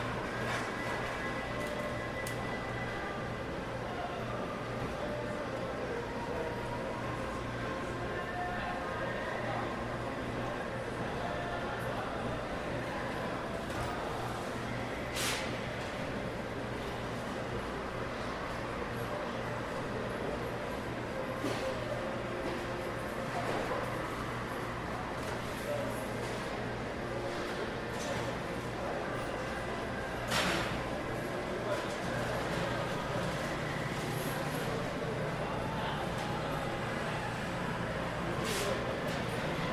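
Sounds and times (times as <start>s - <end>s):
murmur of many people talking in an indoor mall: 0.0s - 39.7s.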